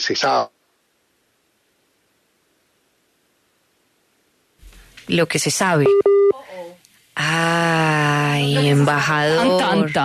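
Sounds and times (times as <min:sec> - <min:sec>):
speech: 0:00.0 - 0:00.6, 0:05.1 - 0:10.0
telephone ringing with an incoming call: 0:05.8 - 0:06.3.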